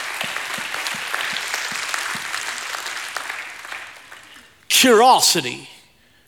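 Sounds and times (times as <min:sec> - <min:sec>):
crowd applauding with hand claps: 0:00.0 - 0:05.6
speech: 0:04.8 - 0:05.8.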